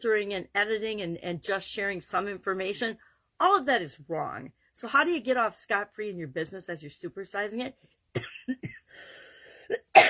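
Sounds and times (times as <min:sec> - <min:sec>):
speech: 0:00.0 - 0:10.0
person coughing dry coughs: 0:08.2 - 0:08.9, 0:09.7 - 0:10.0.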